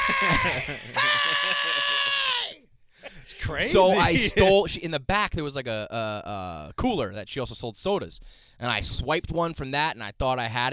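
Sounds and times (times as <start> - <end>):
laughter: 0.0 - 2.4, 3.1 - 4.6
voice imitating a woman screaming out of a window: 0.0 - 2.6
speech: 0.2 - 2.4, 3.2 - 10.7.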